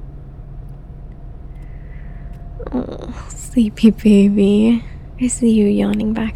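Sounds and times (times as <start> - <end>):
engine and road rumble inside a moving car: 0.0 - 6.3
speech: 2.6 - 6.3.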